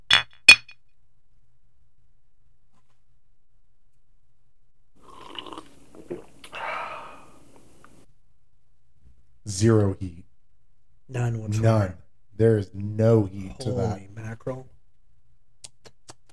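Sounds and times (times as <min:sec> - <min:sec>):
glasses clinking in a toast: 0:00.1 - 0:00.7
speech: 0:09.5 - 0:10.2, 0:11.1 - 0:14.7.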